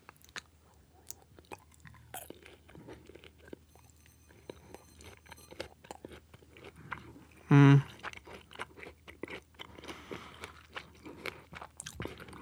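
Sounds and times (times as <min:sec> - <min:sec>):
biting and chewing crunchy blackened food: 0:00.0 - 0:12.3
speech: 0:07.5 - 0:07.9.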